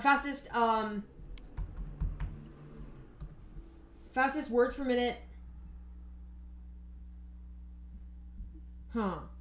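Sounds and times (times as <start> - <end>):
speech: 0.0 - 1.2, 4.2 - 5.3, 8.9 - 9.3
rapid keystrokes typing on a computer keyboard: 1.4 - 2.5.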